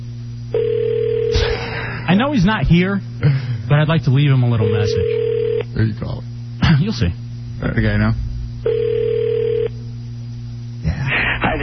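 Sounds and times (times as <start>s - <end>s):
low hum: 0.0s - 11.6s
steady electronic telephone ring tone on an outgoing call: 0.5s - 1.4s, 4.6s - 5.6s, 8.6s - 9.8s
speech: 2.1s - 8.8s.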